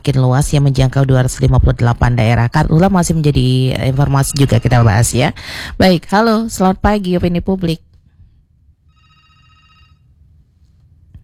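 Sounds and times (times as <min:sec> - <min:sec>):
speech: 0:00.0 - 0:07.9
telephone ringing on an unanswered call-in line: 0:03.8 - 0:05.2, 0:08.9 - 0:10.3.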